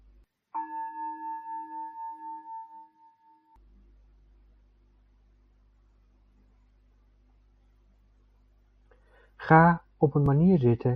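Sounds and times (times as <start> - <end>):
meditation bell ringing: 0.6 - 3.6
speech: 9.5 - 10.9.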